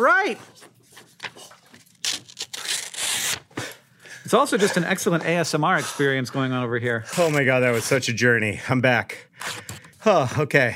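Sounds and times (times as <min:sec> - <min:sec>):
speech: 0:00.0 - 0:00.7, 0:04.3 - 0:09.5, 0:10.1 - 0:10.7
piece of paper being cut: 0:01.0 - 0:03.5, 0:07.1 - 0:08.0.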